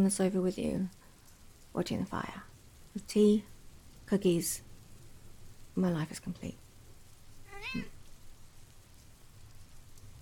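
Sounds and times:
speech: 0.0s - 1.0s, 1.7s - 3.5s, 4.1s - 4.7s, 5.8s - 6.6s, 7.6s - 8.0s
rain patter: 0.0s - 10.2s
cat meowing: 7.4s - 8.0s.

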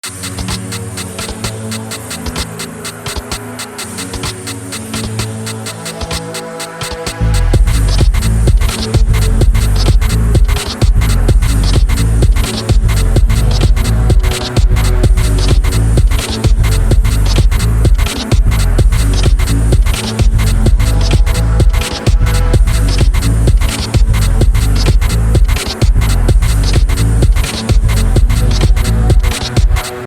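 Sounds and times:
bass: 7.1s - 30.0s.

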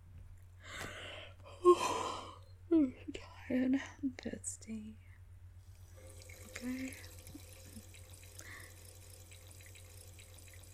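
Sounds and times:
low electrical hum: 0.0s - 10.7s
speech: 2.7s - 5.0s, 6.6s - 7.1s
water running from a tap filling a sink: 5.7s - 10.7s.

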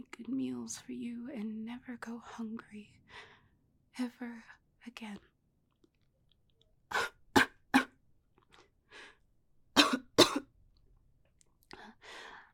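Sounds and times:
speech: 0.3s - 3.3s, 4.0s - 5.3s
person coughing: 9.8s - 10.5s.

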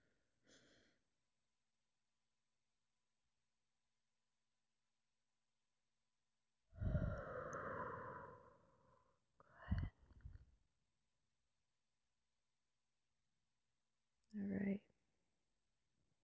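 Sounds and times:
loud breathy exhale: 6.8s - 9.0s
soft breath in: 6.8s - 10.4s.

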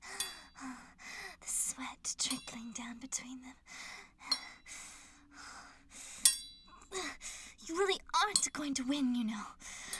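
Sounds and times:
woman panting: 0.0s - 1.5s, 3.6s - 7.6s, 9.6s - 9.9s
speech: 1.8s - 3.8s, 7.7s - 9.8s.

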